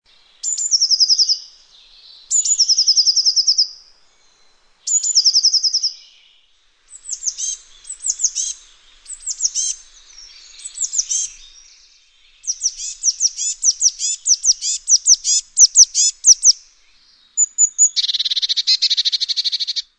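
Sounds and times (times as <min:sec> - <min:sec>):
herrerillo comun calling: 0:00.4 - 0:19.9.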